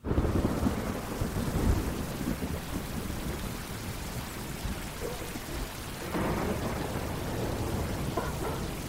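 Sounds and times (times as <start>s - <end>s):
low rumbling swells like thunder: 0.0s - 8.8s
steady rain in a forest: 0.0s - 8.8s.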